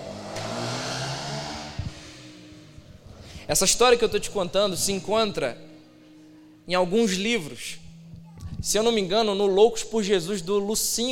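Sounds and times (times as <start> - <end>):
motorcycle passing by: 0.0 - 3.2
speech: 3.5 - 5.7, 6.7 - 7.8, 8.6 - 11.0.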